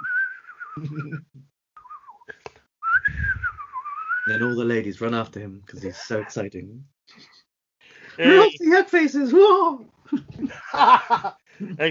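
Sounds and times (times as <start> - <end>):
person whistling a wavering sliding tune: 0.0 - 1.2, 1.8 - 4.5
laughter: 0.8 - 1.4, 5.8 - 6.4, 8.1 - 8.6, 10.1 - 11.8
speech: 0.8 - 1.5, 4.2 - 7.3, 8.2 - 11.8.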